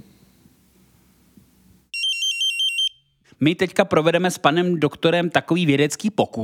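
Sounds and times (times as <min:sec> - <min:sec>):
mine gas analyzer beeping when switched on: 0:02.0 - 0:03.0
speech: 0:03.4 - 0:06.4.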